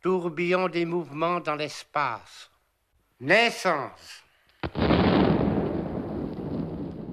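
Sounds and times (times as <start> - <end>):
speech: 0.0 - 2.5, 3.2 - 5.2
heavy artillery shell explosion: 4.6 - 7.1.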